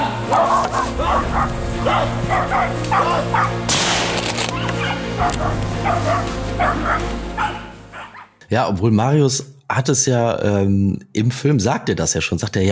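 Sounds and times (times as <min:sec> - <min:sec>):
hunting dogs barking and yipping: 0:00.2 - 0:03.7, 0:04.5 - 0:08.4
speech: 0:08.5 - 0:12.7.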